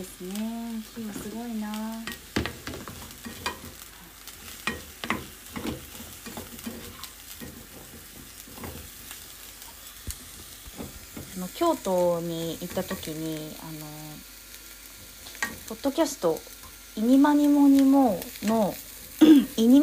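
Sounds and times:
speech: 0.0 - 2.2, 11.6 - 14.1, 15.7 - 19.8
food for a bento sizzling in a pan: 0.0 - 19.8
utensil stirring and scraping in a pan: 4.6 - 11.2.

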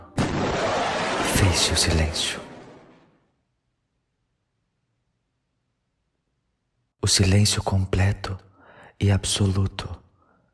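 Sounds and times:
sonic boom of a jet breaking the sound barrier: 0.1 - 3.3
speech: 1.5 - 2.4, 7.1 - 10.0.

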